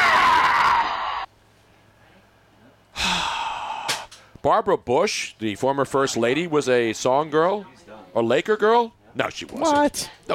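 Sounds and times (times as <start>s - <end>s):
man screaming: 0.0s - 1.3s
speech: 4.4s - 10.3s.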